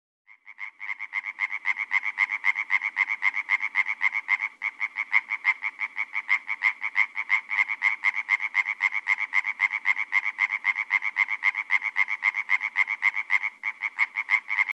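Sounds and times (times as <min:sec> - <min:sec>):
European green tree frog calling: 0:00.3 - 0:14.7.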